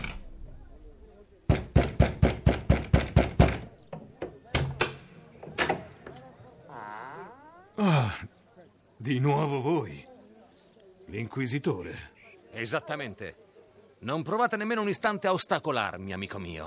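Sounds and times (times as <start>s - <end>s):
knocking on a wooden door: 1.5s - 5.0s
speech: 9.1s - 10.0s, 11.1s - 16.6s.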